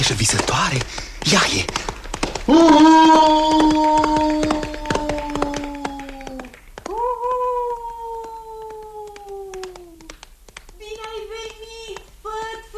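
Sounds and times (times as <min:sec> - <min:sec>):
speech: 0:00.0 - 0:01.9, 0:02.5 - 0:04.5
tomcat caterwauling: 0:02.5 - 0:09.8.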